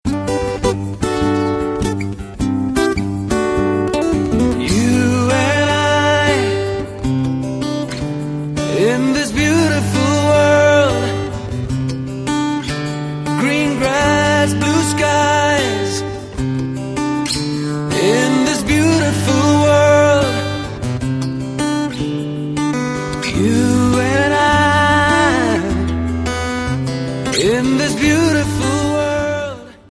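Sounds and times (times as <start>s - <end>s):
guitar ringtone: 0.0s - 29.8s.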